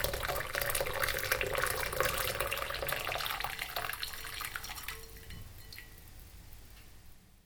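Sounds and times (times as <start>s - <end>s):
hot water gushing from a tap: 0.0s - 5.0s.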